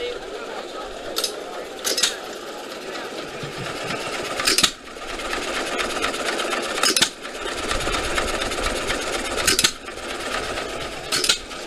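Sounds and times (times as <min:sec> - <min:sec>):
laughter: 0:00.0 - 0:09.4
old flywheel engine idling: 0:00.0 - 0:11.6.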